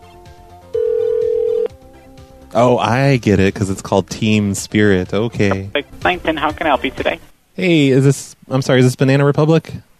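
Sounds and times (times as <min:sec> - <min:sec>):
electronic phone ring tone through the earpiece: 0:00.7 - 0:01.8
speech: 0:02.6 - 0:09.9.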